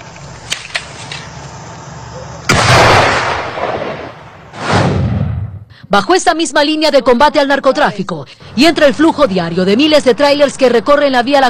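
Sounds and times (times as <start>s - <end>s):
sharp cracks: 2.5s - 5.0s
explosions blowing up underground drug-trafficking structures: 2.5s - 5.7s
speech: 5.9s - 11.4s.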